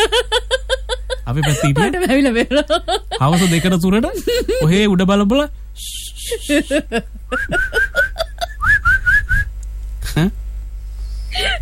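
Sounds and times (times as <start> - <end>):
speech: 0.0 - 0.5, 1.3 - 7.8, 10.2 - 10.4
person chuckling: 0.0 - 4.8, 6.3 - 8.8, 10.0 - 10.4, 11.3 - 11.6
person whistling short bright notes: 8.6 - 9.5.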